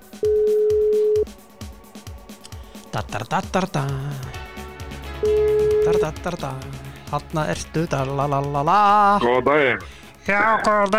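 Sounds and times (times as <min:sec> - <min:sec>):
telephone line tone beep while someone places a call: 0:00.2 - 0:01.2, 0:05.2 - 0:06.0
speech: 0:03.0 - 0:04.4, 0:05.2 - 0:10.9.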